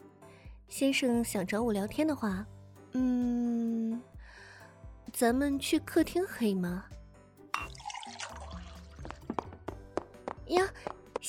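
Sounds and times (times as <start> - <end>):
speech: 0.7 - 3.6, 5.2 - 7.0, 10.5 - 11.2
water pouring: 7.6 - 9.3.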